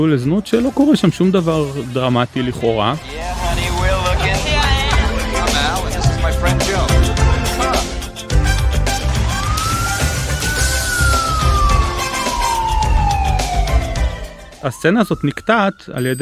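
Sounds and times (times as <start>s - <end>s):
speech: 0.0s - 3.6s, 14.6s - 16.2s
loud ambulance emergency siren wailing: 3.0s - 7.5s, 9.0s - 16.2s.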